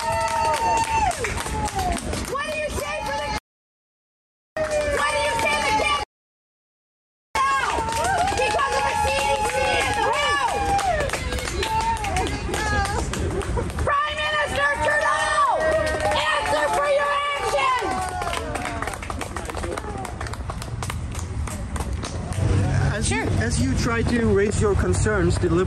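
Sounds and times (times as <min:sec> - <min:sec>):
political party staffers cheering and clapping: 0:00.0 - 0:03.4, 0:04.6 - 0:06.1, 0:07.4 - 0:22.9
speech: 0:24.0 - 0:25.6.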